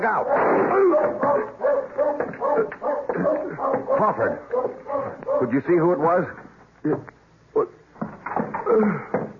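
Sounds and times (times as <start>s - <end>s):
speech: 0.0s - 2.0s, 4.0s - 7.2s, 8.8s - 9.1s
dog barking: 0.2s - 5.6s.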